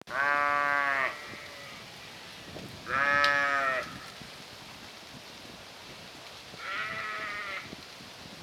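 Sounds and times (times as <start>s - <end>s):
sheep bleating: 0.1s - 1.8s, 2.9s - 4.0s, 6.6s - 7.7s.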